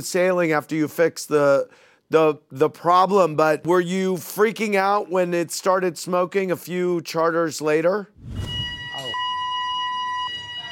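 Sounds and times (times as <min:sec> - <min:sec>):
speech: 0:00.0 - 0:08.4
fire alarm going off on a yacht bridge: 0:08.2 - 0:10.7.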